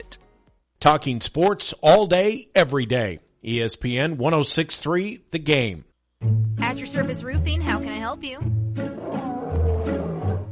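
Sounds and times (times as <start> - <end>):
speech: 0.8 - 9.2
lion roaring: 8.8 - 10.5.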